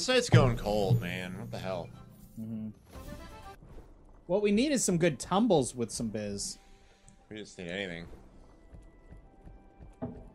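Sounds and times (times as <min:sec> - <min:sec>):
speech: 0:00.0 - 0:03.1, 0:04.3 - 0:06.6, 0:07.3 - 0:08.2
low hum: 0:00.2 - 0:02.7
bright chime-like accent: 0:00.3 - 0:02.6
slot game horse hooves clip-clopping: 0:08.0 - 0:10.3.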